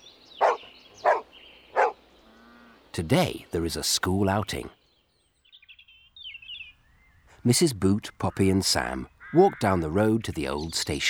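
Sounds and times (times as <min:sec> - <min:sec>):
farm dog barking: 0:00.4 - 0:02.0
speech: 0:03.0 - 0:04.8, 0:07.4 - 0:11.0.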